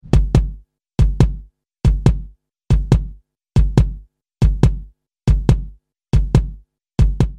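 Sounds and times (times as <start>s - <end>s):
layered chorus kick drum: 0.0s - 7.3s.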